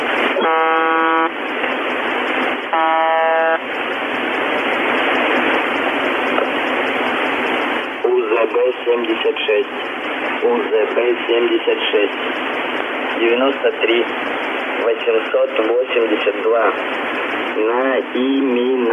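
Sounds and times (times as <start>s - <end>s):
loud radio static hiss: 0.0s - 18.9s
repeated buzzer tones in a broadcast radio transmission: 0.4s - 1.7s, 2.7s - 3.6s.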